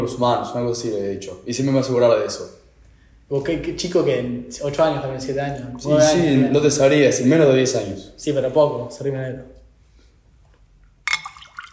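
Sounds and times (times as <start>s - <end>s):
speech: 0.0s - 2.6s, 3.3s - 9.6s
water dripping: 10.9s - 11.7s.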